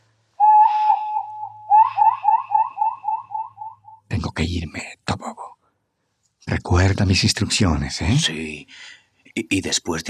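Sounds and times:
whistled imitation of a nocturnal bird's call: 0:00.4 - 0:04.1
speech: 0:04.2 - 0:05.0, 0:06.5 - 0:10.0.

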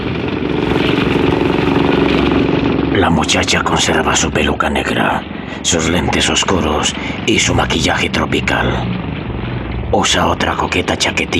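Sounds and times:
fast rented motorboat engine drone: 0:00.0 - 0:11.3
speech: 0:03.0 - 0:09.1, 0:09.9 - 0:11.3.

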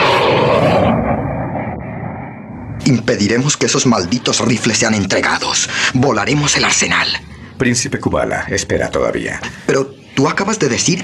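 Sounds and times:
fast airplanes engine roar arriving at a makeshift desert airstrip: 0:00.0 - 0:04.8
speech: 0:02.9 - 0:11.0.

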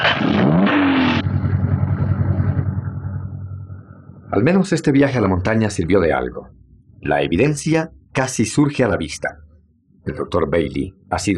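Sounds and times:
car engine starting on a winding mountain road: 0:00.0 - 0:04.4
car engine throbbing idle: 0:01.2 - 0:04.3
speech: 0:04.4 - 0:09.4, 0:10.0 - 0:11.3.

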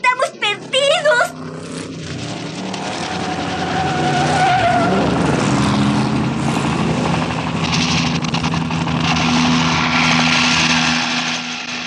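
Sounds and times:
helicopter engine and rotor roaring while descending: 0:00.0 - 0:03.9, 0:06.0 - 0:09.8
high whine of helicopter: 0:00.0 - 0:11.8.

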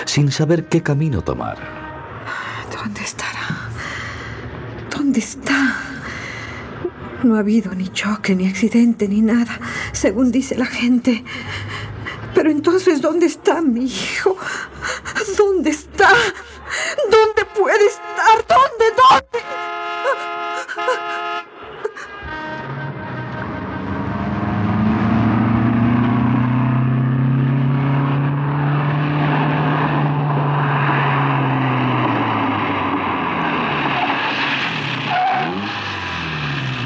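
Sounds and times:
car engine approaching and stopping: 0:00.0 - 0:16.8, 0:21.6 - 0:36.8
speech: 0:00.1 - 0:01.8, 0:02.8 - 0:03.6, 0:05.1 - 0:05.9, 0:07.2 - 0:11.7, 0:12.4 - 0:20.2.

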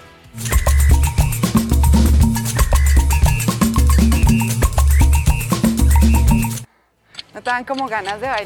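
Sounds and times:
samba music with busy percussion and bright tonal instruments: 0:00.4 - 0:06.7
speech: 0:07.5 - 0:08.4.

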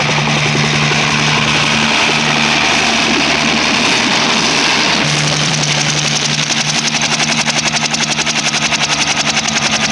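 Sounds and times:
propeller aircraft engine droning as the plane descends to land: 0:00.0 - 0:09.9.

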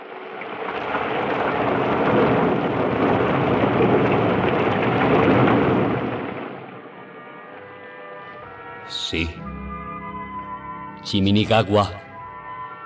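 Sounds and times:
heavy rain pouring down: 0:00.0 - 0:07.4
speech: 0:09.1 - 0:09.4, 0:11.1 - 0:12.0.

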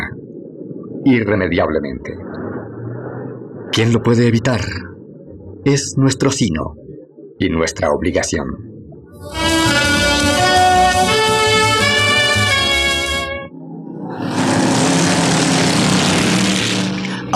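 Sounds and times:
speech: 0:01.0 - 0:02.4, 0:03.7 - 0:04.9, 0:05.6 - 0:06.8, 0:07.4 - 0:09.8
car engine droning on a winding road: 0:09.3 - 0:17.3
car speeding along a road: 0:13.9 - 0:17.3.

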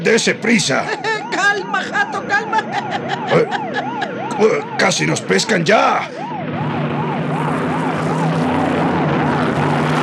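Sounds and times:
speech: 0:00.0 - 0:06.8
police car sirens wailing in a chase: 0:00.0 - 0:10.0
laughter: 0:00.6 - 0:04.6.

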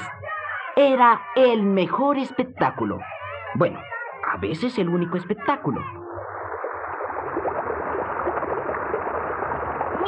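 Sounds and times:
speech: 0:00.8 - 0:06.0
rushing water from a waterfall or fast stream: 0:04.6 - 0:10.0.

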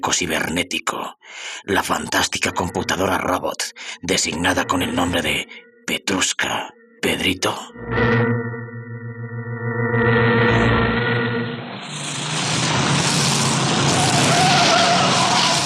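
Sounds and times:
speech: 0:00.1 - 0:08.6
armored limousine engine roaring at high speed: 0:10.0 - 0:15.6
tires screeching across the road: 0:11.9 - 0:15.6.

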